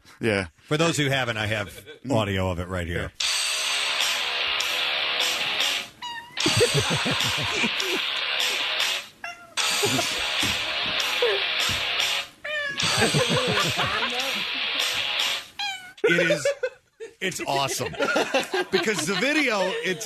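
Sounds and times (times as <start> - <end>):
speech: 0.2 - 3.3, 6.7 - 8.2, 9.8 - 10.6, 13.0 - 14.6, 16.0 - 20.0
loud dense music: 3.2 - 15.5
laughter: 6.4 - 8.7, 9.8 - 11.4, 12.8 - 14.8, 16.0 - 20.0
cat meowing along to a song: 15.6 - 16.0.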